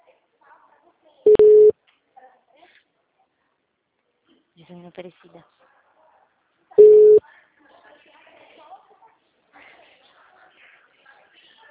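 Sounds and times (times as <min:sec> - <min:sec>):
telephone ringing tone while placing a call: 0:01.3 - 0:01.7, 0:06.8 - 0:07.2
speech: 0:04.7 - 0:05.7.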